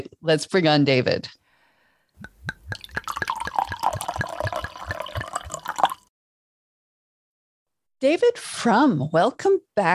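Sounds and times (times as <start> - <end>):
speech: 0.0 - 1.4, 8.0 - 9.9
drink being poured: 2.2 - 6.1.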